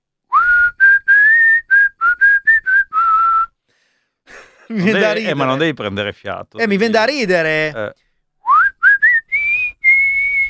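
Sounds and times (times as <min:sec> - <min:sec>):
person whistling a short tune: 0:00.3 - 0:03.6, 0:08.4 - 0:10.4
laughter: 0:04.3 - 0:05.8
speech: 0:04.7 - 0:08.1.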